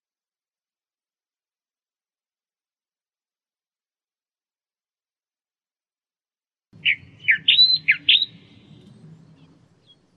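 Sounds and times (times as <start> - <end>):
Australian reed warbler giving scratchy rasping chirps: 6.8 - 10.1
soft low hum: 6.8 - 10.1.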